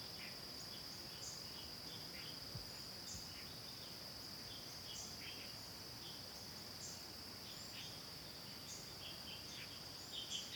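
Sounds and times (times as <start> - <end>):
insects droning in forest: 0.0 - 10.5.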